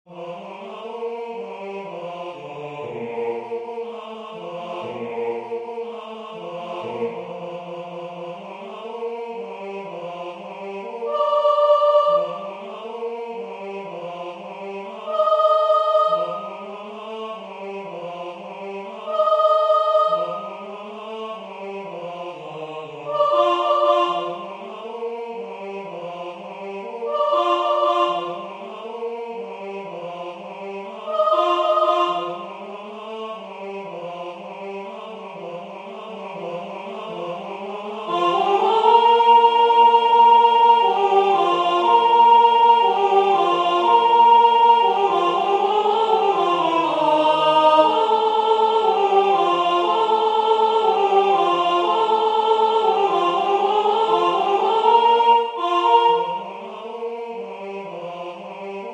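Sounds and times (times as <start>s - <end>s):
sopranos singing: 0.1s - 58.9s.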